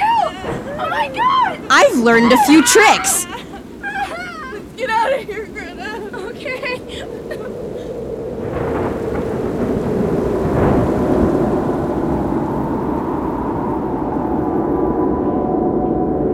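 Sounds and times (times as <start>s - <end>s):
heavy rain: 0.0s - 15.1s
speech: 0.9s - 3.4s
deep rolling thunder: 7.9s - 15.7s.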